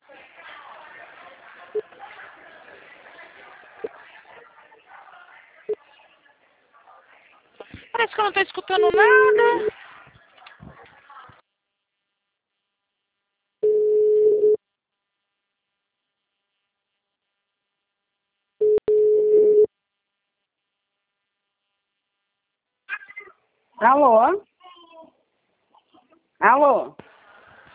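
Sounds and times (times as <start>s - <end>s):
speech: 8.2s - 9.8s, 23.8s - 24.5s, 26.4s - 27.1s
telephone ringback tone on a call: 13.6s - 14.6s, 18.6s - 19.7s.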